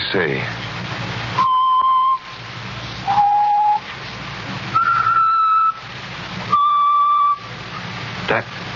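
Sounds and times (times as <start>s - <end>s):
constant hiss: 0.0s - 8.7s
person whistling a slow song tune: 1.4s - 2.2s, 3.1s - 3.8s, 4.7s - 5.8s, 6.5s - 7.5s.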